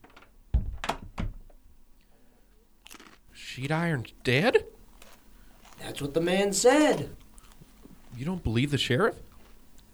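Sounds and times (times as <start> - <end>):
door shutting with a heavy close thud: 0.0 - 1.7
speech: 3.5 - 4.8, 5.9 - 7.2, 8.2 - 9.3.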